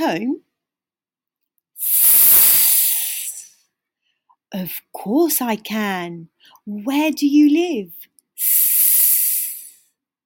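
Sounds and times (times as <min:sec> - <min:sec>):
speech: 0:00.0 - 0:00.4, 0:04.5 - 0:08.6
snake hissing: 0:01.8 - 0:03.6, 0:08.4 - 0:09.8.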